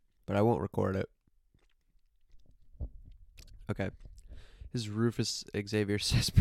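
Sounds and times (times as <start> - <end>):
speech: 0.3 - 1.2, 3.7 - 4.1, 4.7 - 6.3
person chewing an Oreo cookie into a microphone: 1.3 - 3.6.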